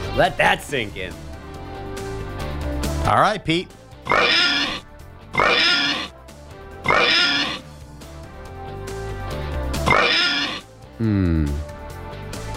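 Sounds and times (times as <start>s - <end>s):
speech: 0.2s - 1.2s, 3.0s - 4.6s, 11.0s - 11.6s
pig oinking and squealing: 4.0s - 6.2s, 6.8s - 7.7s, 9.8s - 10.7s.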